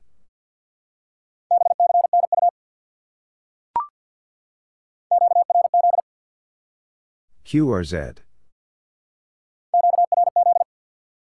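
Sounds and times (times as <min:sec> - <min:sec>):
rapid Morse code beeps at steady mid-pitched tone: 0:01.5 - 0:02.5, 0:05.1 - 0:06.0, 0:09.8 - 0:10.7
speech: 0:07.5 - 0:08.3.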